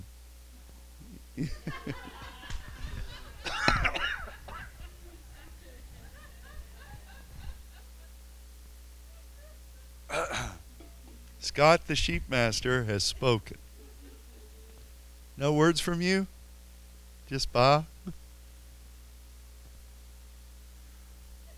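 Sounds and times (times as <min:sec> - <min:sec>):
speech: 0:01.4 - 0:02.1, 0:11.6 - 0:13.6, 0:15.4 - 0:16.3, 0:17.3 - 0:18.2
laughter: 0:01.4 - 0:08.2
man clearing his throat: 0:03.5 - 0:04.8, 0:10.1 - 0:10.7.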